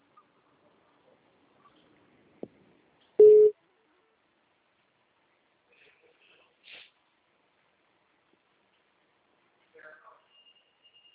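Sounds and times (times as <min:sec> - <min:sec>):
short electronic phone beep for an incoming call: 0:03.2 - 0:03.5.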